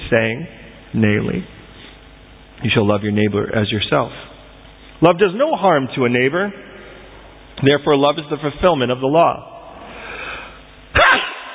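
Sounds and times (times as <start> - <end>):
speech: 0.1 - 1.6, 2.6 - 4.2, 5.0 - 6.7, 7.6 - 9.5
breathy exhale: 9.8 - 10.7
person sneezing: 10.9 - 11.5.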